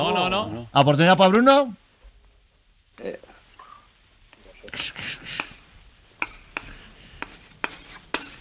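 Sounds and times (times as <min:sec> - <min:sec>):
speech: 0:00.4 - 0:01.8, 0:03.0 - 0:03.3, 0:04.7 - 0:05.2
chalk scraping across a chalkboard: 0:03.2 - 0:03.6, 0:04.3 - 0:08.4
chalk tapping on chalkboard surface: 0:04.3 - 0:05.6, 0:06.2 - 0:08.4.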